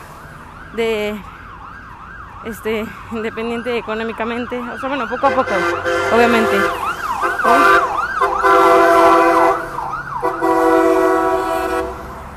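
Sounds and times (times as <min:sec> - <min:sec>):
loud ambulance siren wailing as it passes by: 0:00.0 - 0:12.3
speech: 0:00.7 - 0:01.3, 0:02.4 - 0:06.9, 0:07.5 - 0:07.9
steady blaring horn tone: 0:04.8 - 0:12.2.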